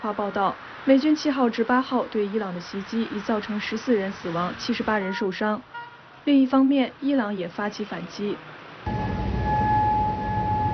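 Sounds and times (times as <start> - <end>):
speech: 0.0 - 9.0
air raid warning siren in Kuwait City: 8.9 - 10.7
dense low rumble: 8.9 - 10.7.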